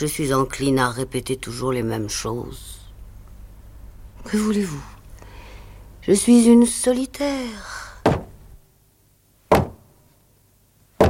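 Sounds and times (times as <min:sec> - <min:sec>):
speech: 0:00.0 - 0:02.8, 0:04.2 - 0:05.0, 0:06.0 - 0:07.8
loud heavy knocks on a door: 0:08.0 - 0:08.3, 0:09.5 - 0:09.8.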